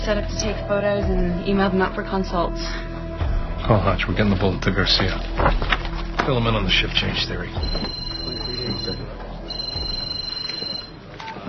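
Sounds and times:
speech: 0.0 - 2.9, 3.6 - 5.7, 6.3 - 8.1, 8.7 - 9.2
telephone ringing: 7.6 - 11.1.

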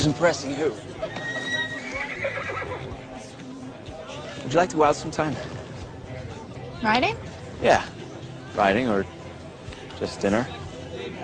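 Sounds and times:
speech: 0.0 - 1.1, 4.4 - 5.6, 6.8 - 8.0, 8.6 - 9.2, 10.0 - 11.2
seven-year-old thoroughbred mix pony neighing: 1.0 - 3.0.

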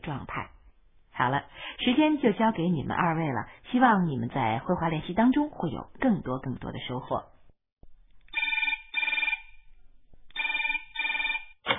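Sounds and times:
speech: 0.1 - 0.5, 1.2 - 7.3
telephone ringing: 8.3 - 9.6, 10.3 - 11.6.

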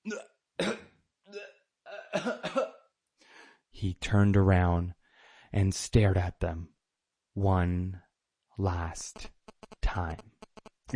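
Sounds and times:
man making strangled choking noises in his throat: 0.0 - 2.8
speech: 3.8 - 6.7, 7.4 - 9.4, 10.0 - 10.3.

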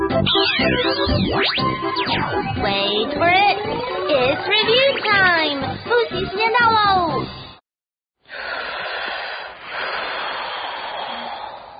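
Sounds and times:
speech: 0.2 - 7.5
long loud breath in during a deep-breathing exercise: 8.3 - 11.7.

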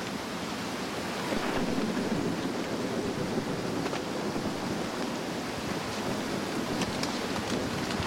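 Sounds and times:
rushing river water: 0.0 - 8.0.

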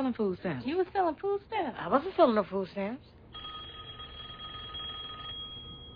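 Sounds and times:
speech: 0.0 - 3.4
telephone ringing with electronic trill: 3.3 - 5.9.

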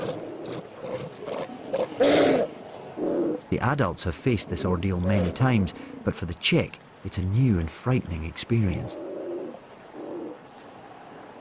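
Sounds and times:
colony of sea lions and seals roaring and bellowing: 0.0 - 3.5, 4.3 - 6.1, 8.8 - 11.3
speech: 3.5 - 9.1.

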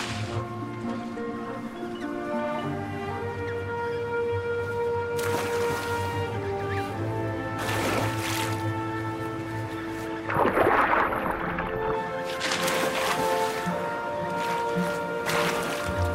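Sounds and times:
sustained musical backdrop: 0.0 - 16.1
penguins plunging into the sea: 5.2 - 6.3, 7.5 - 8.9, 10.0 - 16.1.

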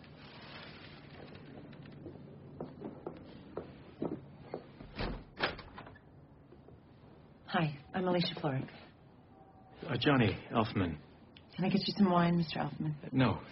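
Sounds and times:
front door clicks and knocks as it is opened: 4.8 - 6.0
speech: 7.5 - 8.9, 9.9 - 13.5.

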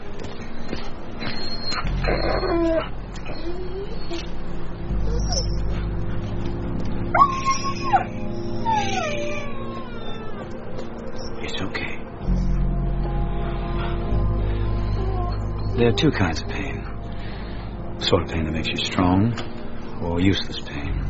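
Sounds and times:
injured dog whimpering and whining in pain: 0.6 - 6.5, 7.1 - 12.6, 14.8 - 17.0
low steady rumble: 1.8 - 21.0
speech: 2.1 - 5.6, 15.8 - 16.6, 18.1 - 20.9.

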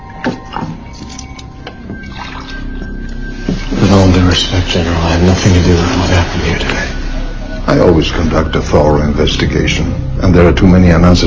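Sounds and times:
water poured into a glass: 2.0 - 2.8
speech: 4.4 - 7.0, 7.7 - 11.2.

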